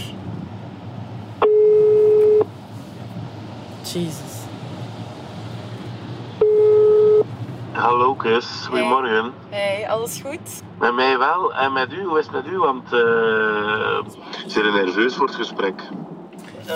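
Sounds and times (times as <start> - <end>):
outgoing phone call ringback tone in a car: 1.4 - 2.4, 6.4 - 7.2
speech: 3.9 - 4.3, 7.9 - 16.7.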